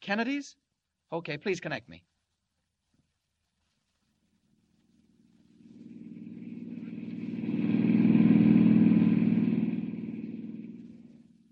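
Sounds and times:
speech: 0.1s - 2.1s
rented car engine droning driving along a dusty road: 5.0s - 11.4s.

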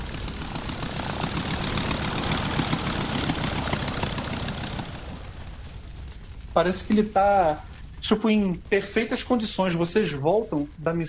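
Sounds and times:
damaged shot-up airplane engine running after landing on a runway: 0.0s - 11.0s
speech: 6.6s - 11.0s.

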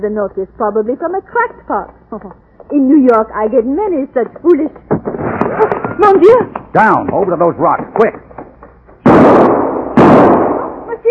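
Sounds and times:
speech: 0.0s - 8.2s
rifle shots: 9.0s - 10.9s.

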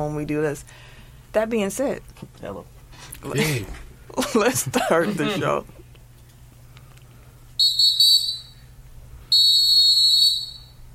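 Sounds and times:
speech: 0.0s - 5.8s
shrill whistle blasts as show intro: 7.6s - 8.7s, 9.3s - 10.9s.

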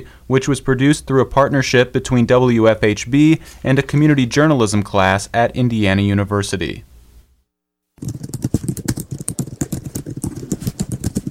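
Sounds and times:
speech: 0.0s - 6.9s, 8.0s - 8.3s
computer keyboard typing: 8.0s - 11.2s.

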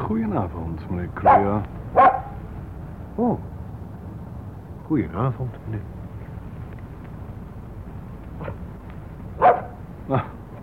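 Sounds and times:
low rumble: 0.0s - 10.6s
speech: 0.1s - 2.2s, 3.2s - 3.5s, 4.9s - 6.0s, 10.1s - 10.3s
dog near pigeons barking: 1.2s - 2.4s, 8.4s - 8.6s, 9.4s - 9.8s.

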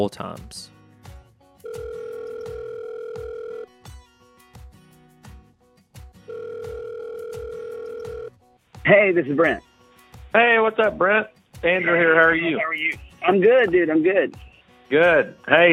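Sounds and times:
speech: 0.0s - 0.8s, 8.9s - 9.7s, 10.3s - 15.7s
soft rhythmic music bed: 0.0s - 15.7s
phone ringback tone as a long steady electronic buzz: 1.6s - 3.7s, 6.3s - 8.4s.

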